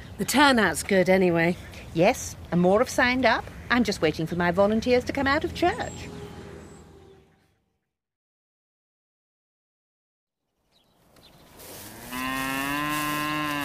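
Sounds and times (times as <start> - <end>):
speech: 0.2 - 6.2
cattle in a herd mooing: 11.8 - 13.6.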